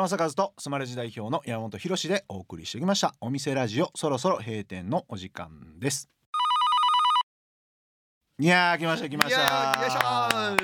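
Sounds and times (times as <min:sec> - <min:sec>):
speech: 0:00.0 - 0:06.2, 0:08.4 - 0:10.6
telephone ringing with a rapid trilling electronic bell: 0:06.4 - 0:07.3.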